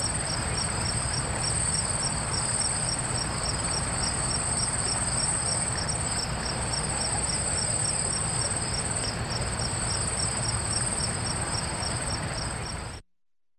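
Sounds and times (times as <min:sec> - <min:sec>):
cicada piercing high-pitched drone with lower pulsing layer: 0:00.0 - 0:13.0
constant low rumbling background noise: 0:00.0 - 0:13.0.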